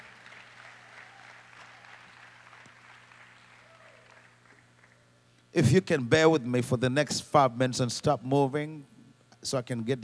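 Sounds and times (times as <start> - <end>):
audience clapping hands: 0.0 - 5.1
low electrical hum: 0.0 - 10.0
speech: 5.5 - 10.0.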